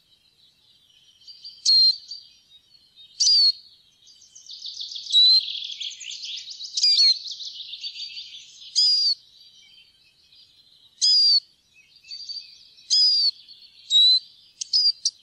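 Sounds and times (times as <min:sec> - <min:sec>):
Eurasian siskin twittering song with wheezy notes: 0:00.0 - 0:15.2.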